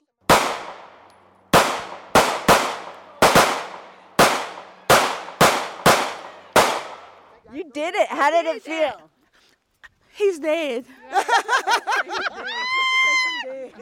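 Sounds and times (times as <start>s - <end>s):
gunshots fired at a man-silhouette target on a shooting range: 0.3s - 7.3s
speech: 7.5s - 9.2s, 10.2s - 13.7s
laughter: 10.9s - 13.7s.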